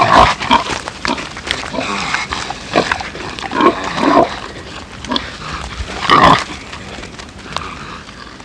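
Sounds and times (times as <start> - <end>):
pigs squealing: 0.0 - 6.8
pigs grunting: 0.0 - 8.4.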